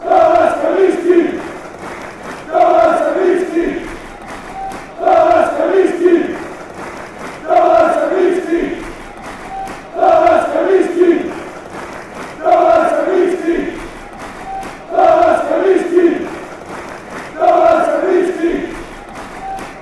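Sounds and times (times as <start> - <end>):
football fans chanting: 0.0 - 19.8.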